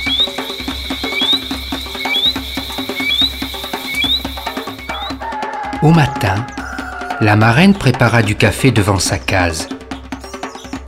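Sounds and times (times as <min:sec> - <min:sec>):
high chirping frog calls at night: 0:00.0 - 0:07.2
speech: 0:05.8 - 0:06.6, 0:07.2 - 0:09.8.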